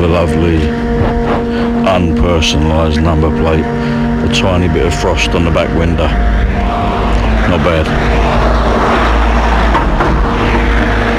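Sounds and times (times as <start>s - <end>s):
speech: 0.1s - 1.2s, 1.9s - 6.6s, 7.5s - 9.2s
car driving past: 3.7s - 11.1s.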